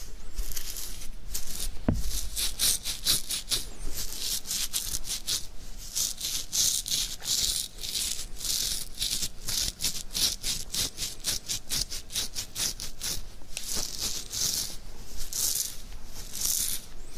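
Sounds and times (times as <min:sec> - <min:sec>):
beard scratching: 0:00.0 - 0:17.1
low thump: 0:01.8 - 0:02.1.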